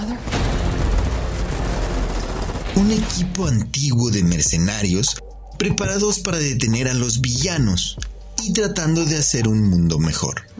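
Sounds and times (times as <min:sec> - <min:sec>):
rapid gunfire sound effect: 0:00.2 - 0:03.6
speech: 0:02.8 - 0:10.5.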